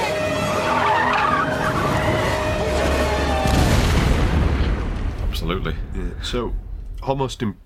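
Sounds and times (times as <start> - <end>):
deep rumbling: 0.4 - 7.6
CGI movie-style explosion: 1.4 - 7.0
speech: 5.6 - 7.6.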